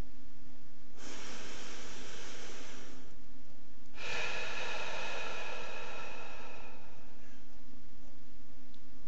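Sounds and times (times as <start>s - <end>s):
faint steady hum: 0.0s - 9.0s
person breathing hard during a guided breathing exercise: 0.9s - 3.2s, 3.9s - 7.7s.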